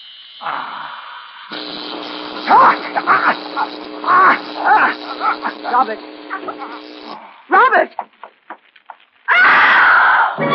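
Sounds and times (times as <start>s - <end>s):
speech: 0.4s - 8.2s
woman screaming: 9.3s - 10.4s.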